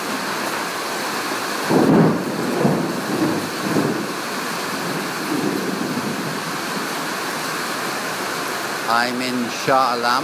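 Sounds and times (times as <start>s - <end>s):
heavy rain pattering on a corrugated iron roof in Shah Alam Malaysia: 0.0s - 10.2s
low rolling thunder during heavy rainstorm: 1.6s - 7.8s
speech: 8.9s - 10.2s.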